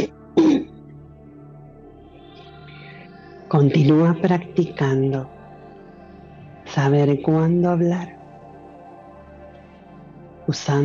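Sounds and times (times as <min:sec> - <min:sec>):
throat clearing: 0:00.0 - 0:00.7
speech: 0:03.5 - 0:05.4, 0:06.8 - 0:08.2, 0:10.5 - 0:10.8.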